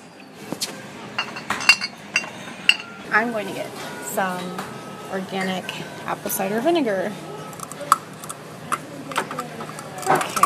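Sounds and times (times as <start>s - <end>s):
small glass bottles for oil and vinegar dispensers clinking: 1.2s - 3.0s
speech: 3.1s - 7.3s.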